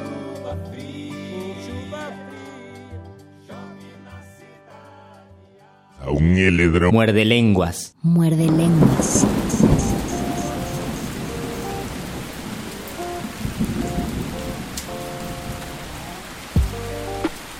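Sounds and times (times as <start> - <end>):
speech: 0.5 - 0.9, 6.1 - 9.8
deep rumble of thunder: 8.4 - 16.8
steady rain: 8.5 - 17.5.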